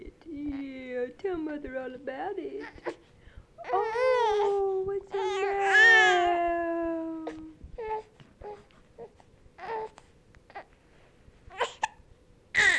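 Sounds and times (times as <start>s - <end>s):
speech: 1.2s - 5.7s
baby whimpering cry: 3.6s - 6.3s, 7.2s - 10.7s, 11.5s - 12.0s, 12.6s - 12.7s.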